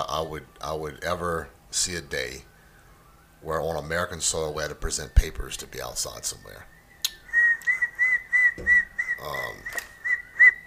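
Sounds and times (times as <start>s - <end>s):
speech: 0.0s - 2.5s, 3.4s - 6.8s, 8.6s - 9.9s
low rough sounds: 0.0s - 10.6s
person whistling a tune: 6.7s - 10.6s.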